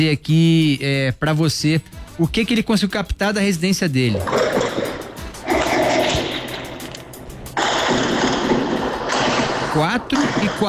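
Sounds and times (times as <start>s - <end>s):
speech: 0.0s - 4.7s, 9.8s - 10.6s
loud steady broadband noise: 4.1s - 10.6s
gunshots heard from a residence at night: 4.3s - 10.6s.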